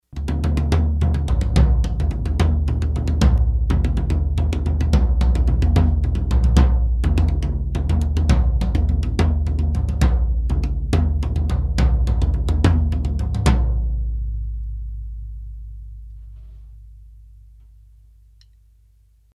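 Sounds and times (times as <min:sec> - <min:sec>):
tom drums: 0:00.1 - 0:14.2.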